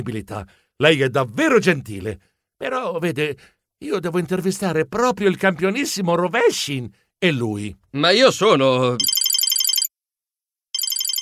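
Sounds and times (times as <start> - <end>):
speech: 0.0 - 9.2
mobile phone ringtone with warbling electronic tones: 9.0 - 9.9, 10.8 - 11.1.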